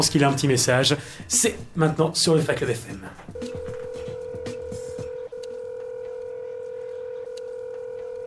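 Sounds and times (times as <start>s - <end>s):
speech: 0.0s - 3.8s
electronic telephone keypad beeps: 3.4s - 8.2s.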